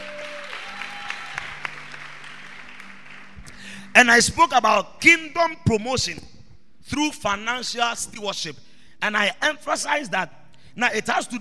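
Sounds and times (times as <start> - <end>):
church audience clapping for a preacher: 0.0 - 3.8
speech: 4.0 - 6.3, 6.9 - 11.3.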